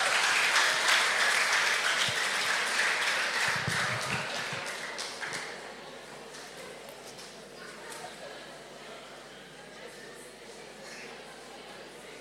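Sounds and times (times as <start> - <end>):
crowd applause welcoming guests: 0.0 - 5.6.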